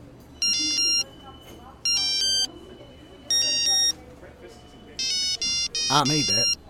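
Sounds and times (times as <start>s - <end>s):
faint voices murmuring: 0.0s - 6.6s
beepy synthesized mobile phone ringtone melody: 0.4s - 1.1s, 1.8s - 4.0s, 5.0s - 6.6s.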